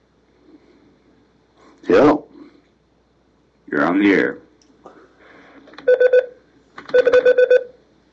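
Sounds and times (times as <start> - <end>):
speech: 3.9 - 4.4
telephone keypad dialing tones: 5.8 - 6.3, 6.9 - 7.8.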